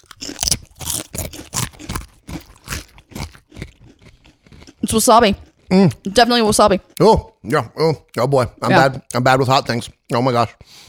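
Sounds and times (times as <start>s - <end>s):
crunching and chewing tortilla chips: 0.0s - 7.0s
speech: 4.9s - 10.8s.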